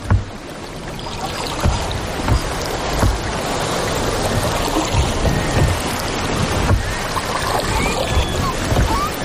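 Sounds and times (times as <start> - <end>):
water sloshing and splashing against a small boat hull over a coral reef: 0.0 - 9.2
wind buffeting the microphone: 0.0 - 9.2.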